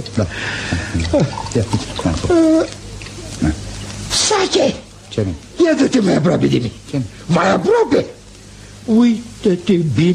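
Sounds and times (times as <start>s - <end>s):
speech: 0.0s - 2.8s, 3.4s - 3.6s, 4.3s - 8.2s, 8.8s - 10.1s
water splashing and trickling: 1.1s - 3.2s.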